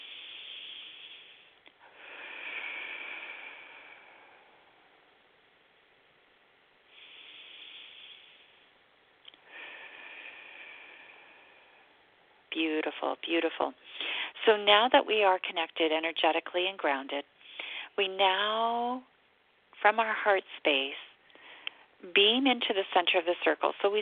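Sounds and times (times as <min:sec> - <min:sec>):
slow deep breaths during a guided group meditation: 0:00.0 - 0:05.1, 0:06.9 - 0:12.2, 0:13.8 - 0:14.4, 0:17.3 - 0:18.0, 0:21.1 - 0:22.0
speech: 0:12.6 - 0:17.3, 0:18.0 - 0:19.1, 0:19.8 - 0:21.1, 0:22.0 - 0:23.9.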